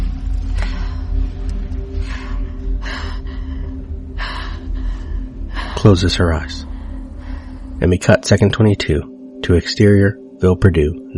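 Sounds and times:
woman breathing hard and heavily in a night-time film scene: 0.0 - 5.9, 6.6 - 7.8
steady low hum: 0.0 - 11.1
speech: 5.8 - 6.7, 7.8 - 11.1.

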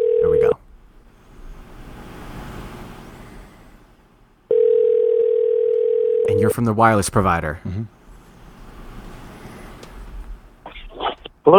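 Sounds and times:
telephone ringback tone on outgoing call: 0.0 - 0.6, 4.5 - 6.5
low rumble of traffic-like noise: 0.0 - 4.5, 6.3 - 11.5
speech: 6.5 - 8.0.

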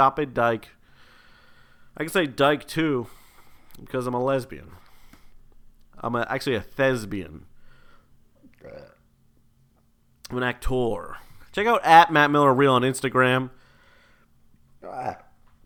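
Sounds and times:
speech: 0.0 - 0.8, 2.0 - 3.2, 3.8 - 4.8, 6.0 - 7.5, 10.3 - 13.6, 14.8 - 15.2
faint hum: 0.0 - 15.6
burp: 8.4 - 9.1, 14.8 - 15.4.

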